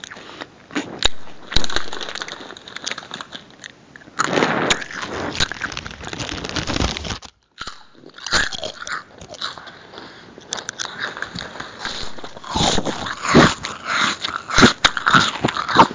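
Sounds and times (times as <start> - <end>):
crisps crunching: 0.0 - 15.9.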